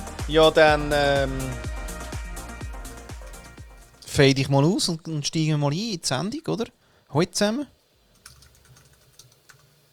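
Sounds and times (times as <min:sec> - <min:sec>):
speech: 0:00.3 - 0:01.7, 0:04.2 - 0:07.8
typing on a computer keyboard: 0:08.2 - 0:09.7.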